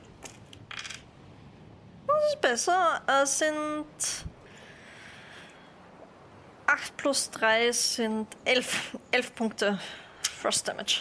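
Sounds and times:
dice rolled during a tabletop role-playing game: 0.2s - 1.0s
speech: 2.4s - 4.3s, 6.8s - 10.9s.

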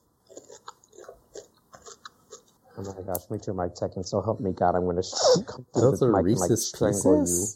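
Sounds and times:
candy-coated peanut butter candies being chewed: 0.2s - 3.3s
speech: 2.8s - 7.5s.

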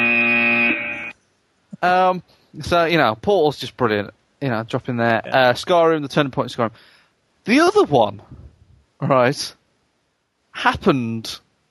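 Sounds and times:
loud harsh electronic buzzer: 0.0s - 1.2s
speech: 1.8s - 8.4s, 9.0s - 9.6s, 10.6s - 11.4s.

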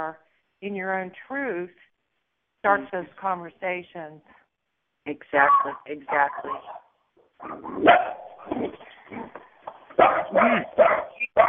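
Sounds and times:
speech: 0.0s - 1.9s, 2.6s - 4.4s, 5.0s - 6.8s, 7.4s - 11.4s
dog barking and yelping: 5.4s - 11.4s.

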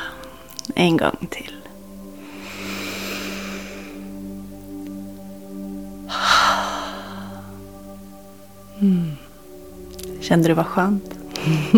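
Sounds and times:
faint steady hum: 0.0s - 11.7s
speech: 0.7s - 1.6s, 8.8s - 9.1s, 10.3s - 11.7s
slow deep inhale and airy exhale: 2.2s - 4.1s, 6.1s - 7.6s.

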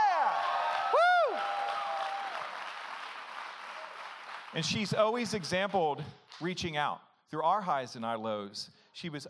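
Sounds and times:
high whoop or whistle: 0.0s - 2.5s
audience applauding: 0.2s - 5.8s
speech: 4.5s - 9.2s.

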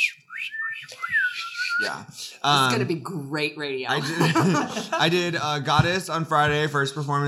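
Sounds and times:
breathy airy attempt at whistling: 0.0s - 2.0s
speech: 1.8s - 7.2s
laughter: 3.9s - 5.4s.

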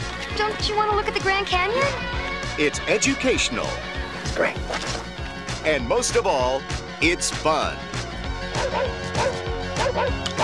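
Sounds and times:
speech: 0.4s - 7.9s, 9.9s - 10.3s
dog barking at a picnic basket: 8.6s - 10.4s.

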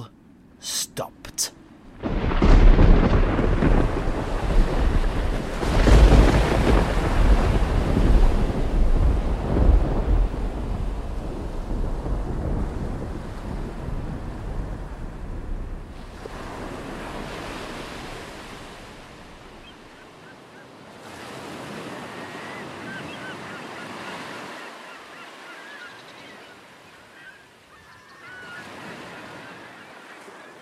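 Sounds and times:
ocean waves on a calm sea: 0.0s - 30.6s
speech: 0.6s - 2.2s
wind noise: 1.9s - 19.8s.

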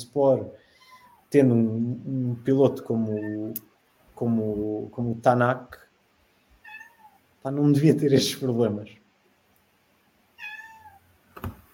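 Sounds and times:
speech: 0.0s - 0.6s, 1.3s - 5.8s, 7.4s - 9.0s
cat meowing: 3.0s - 3.6s, 6.6s - 7.2s, 10.3s - 11.1s.

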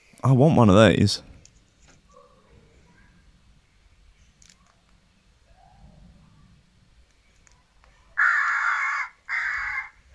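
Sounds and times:
speech: 0.2s - 1.3s
recorded crow distress call played from a device on a roof: 8.2s - 10.1s.

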